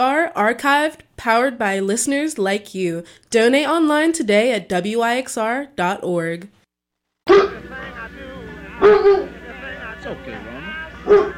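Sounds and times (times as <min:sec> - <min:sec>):
speech: 0:00.0 - 0:06.6, 0:08.8 - 0:09.4, 0:10.0 - 0:11.3
police-trained Doberman Pinscher barking: 0:07.3 - 0:07.6, 0:08.8 - 0:09.3, 0:11.0 - 0:11.3.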